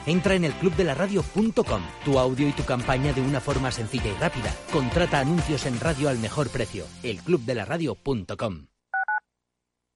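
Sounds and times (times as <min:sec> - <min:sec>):
speech: 0:00.0 - 0:08.7
electronic telephone keypad dialing tones: 0:09.0 - 0:09.2.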